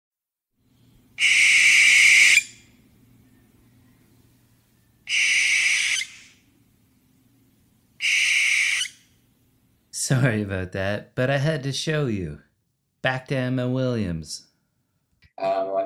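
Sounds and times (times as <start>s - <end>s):
speech: 1.2s - 1.4s, 10.1s - 14.5s
barn owl screeching: 1.2s - 2.8s, 5.1s - 6.5s, 8.0s - 9.2s.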